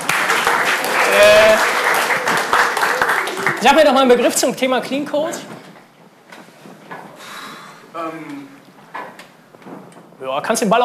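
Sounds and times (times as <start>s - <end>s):
crowd clapping: 0.0s - 4.4s
speech: 3.6s - 5.5s, 8.0s - 8.6s, 10.2s - 10.8s.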